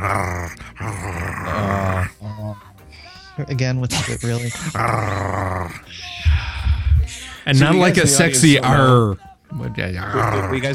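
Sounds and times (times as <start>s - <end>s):
speech: 0.0s - 0.6s, 3.5s - 6.1s, 7.5s - 9.2s, 9.8s - 10.7s
person imitating a snarling werewolf growl: 0.0s - 2.7s, 4.6s - 7.1s, 10.0s - 10.7s.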